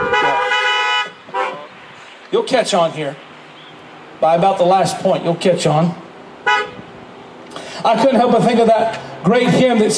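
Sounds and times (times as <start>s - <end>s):
car horn honking: 0.0s - 1.8s, 6.4s - 6.9s
speech: 2.3s - 3.3s, 4.2s - 6.0s, 7.8s - 9.9s.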